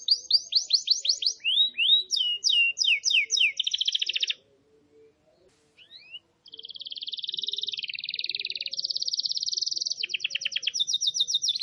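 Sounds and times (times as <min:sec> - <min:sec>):
wild canary singing: 0:00.0 - 0:05.1, 0:05.8 - 0:11.6
faint low hum: 0:04.4 - 0:06.9.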